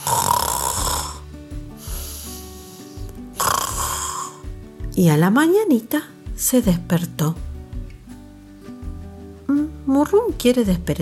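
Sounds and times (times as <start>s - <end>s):
storyteller imitating the snoring of a cat asleep in a shoe: 0.0s - 4.5s
speech: 5.0s - 7.5s, 9.9s - 10.9s.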